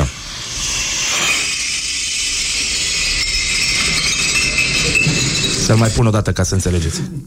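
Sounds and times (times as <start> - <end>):
empty wine bottles thrown into a metal glass-recycling container: 1.0 - 6.0
speech: 5.7 - 7.2.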